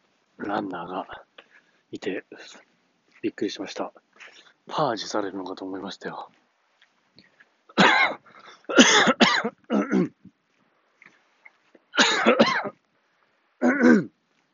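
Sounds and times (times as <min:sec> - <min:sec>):
speech: 0:00.4 - 0:01.3, 0:01.9 - 0:06.4, 0:13.6 - 0:14.1
person coughing harshly: 0:07.7 - 0:10.2, 0:12.0 - 0:12.8, 0:13.6 - 0:14.1
throat clearing: 0:07.8 - 0:10.2, 0:13.6 - 0:14.1.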